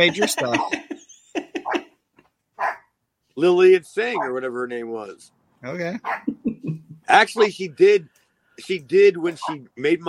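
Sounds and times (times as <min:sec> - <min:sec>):
speech: 0:00.0 - 0:00.8, 0:03.4 - 0:10.0
dogs barking: 0:00.0 - 0:00.9, 0:01.5 - 0:01.9, 0:02.6 - 0:02.9, 0:04.0 - 0:04.4, 0:06.0 - 0:06.4, 0:09.4 - 0:09.6
laughter: 0:00.0 - 0:01.9, 0:06.3 - 0:07.4
dog yipping: 0:00.4 - 0:01.8, 0:02.6 - 0:02.9, 0:06.0 - 0:06.3.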